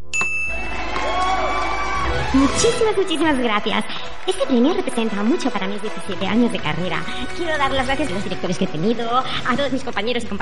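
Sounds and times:
small handbell ringing: 0.1s - 0.7s
crowd cheering: 0.4s - 9.8s
speech: 2.3s - 10.4s.

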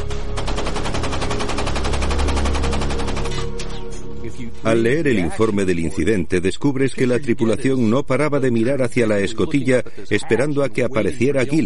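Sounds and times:
machine-gun bursts in a naval battle: 0.1s - 3.8s
scattered gunshots in a naval battle: 0.2s - 3.9s
speech: 4.7s - 11.6s.

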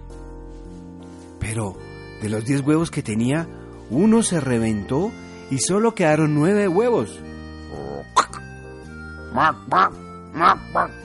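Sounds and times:
speech: 1.4s - 7.8s, 9.4s - 11.0s
duckling quacking: 9.3s - 11.0s.

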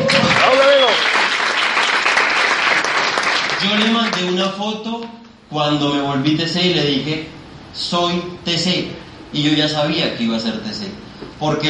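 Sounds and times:
vocal cheer: 0.0s - 1.1s
audience applause: 0.0s - 4.3s
speech: 3.7s - 11.6s.

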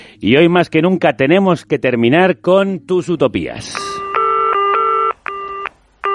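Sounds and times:
speech: 0.2s - 3.9s
electronic telephone ringing before a voicemail greeting: 3.8s - 6.1s.

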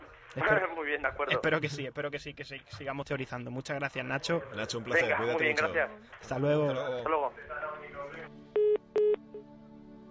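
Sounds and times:
voices: 0.0s - 3.2s, 3.8s - 8.3s
speech: 0.3s - 8.4s
telephone keypad beeps with dual-tone notes: 8.6s - 9.2s.

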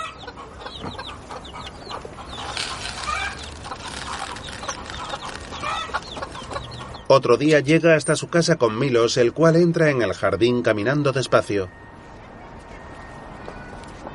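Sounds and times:
hens clucking: 0.0s - 7.6s
steady noisy background: 0.4s - 14.1s
speech: 7.1s - 11.8s.

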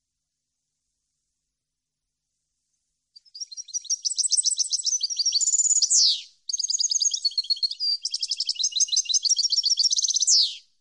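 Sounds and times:
European goldfinch song: 3.2s - 10.7s.

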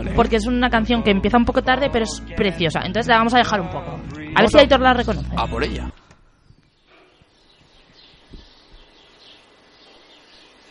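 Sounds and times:
speech: 0.2s - 6.0s
small birds chirping: 6.2s - 10.7s.

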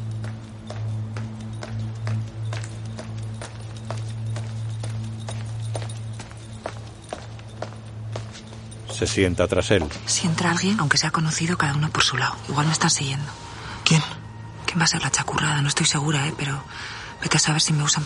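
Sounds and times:
footsteps of a girl walking on a hard church floor: 0.0s - 10.7s
speech: 9.0s - 14.1s, 14.8s - 18.0s.

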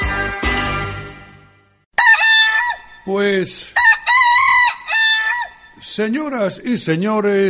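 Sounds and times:
rooster crowing: 2.0s - 3.1s, 3.8s - 5.8s
speech: 3.1s - 3.8s, 5.8s - 7.4s.

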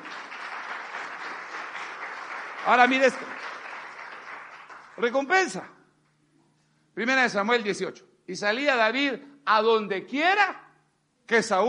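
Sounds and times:
audience applauding: 0.0s - 5.3s
speech: 2.6s - 3.4s, 5.0s - 5.7s, 7.0s - 10.6s, 11.3s - 11.6s.

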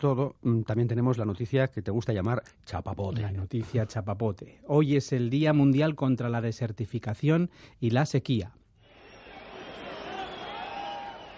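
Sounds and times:
speech: 0.0s - 8.6s
crowd booing: 8.8s - 11.3s.

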